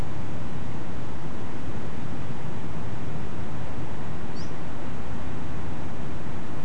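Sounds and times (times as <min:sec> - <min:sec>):
unidentified nocturnal flight call: 0:00.0 - 0:06.6.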